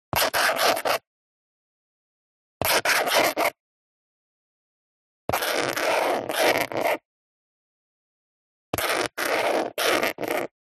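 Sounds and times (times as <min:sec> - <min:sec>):
handwriting scratching: 0:00.1 - 0:01.1, 0:02.6 - 0:03.6, 0:05.3 - 0:07.0, 0:08.7 - 0:10.5.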